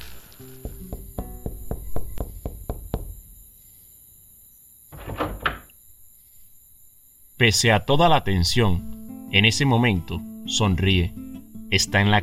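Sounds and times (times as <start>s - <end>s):
loud rapid urgent knocking on a door: 0.6s - 3.3s
clattering noise: 4.9s - 5.7s
speech: 7.4s - 12.2s.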